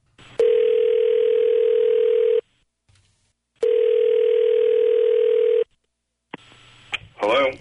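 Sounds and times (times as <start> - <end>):
phone line ringing as a call is placed: 0.4 - 2.4, 3.6 - 5.7.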